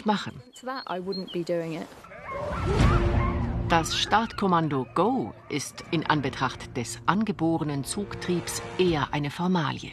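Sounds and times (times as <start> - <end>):
speech: 0.0 - 9.9
sled dogs barking and yipping excitedly while being harnessed: 2.0 - 6.7.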